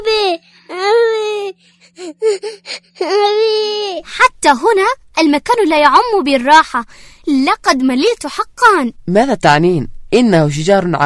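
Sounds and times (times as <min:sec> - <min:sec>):
child wailing at a park playground: 0:00.0 - 0:04.0
speech: 0:04.0 - 0:11.0.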